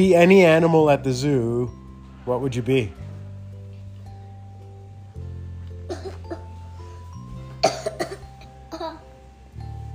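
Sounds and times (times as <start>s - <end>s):
speech: 0.0s - 3.0s
low musical hum: 0.0s - 9.9s
person coughing: 5.9s - 6.5s, 7.6s - 9.0s.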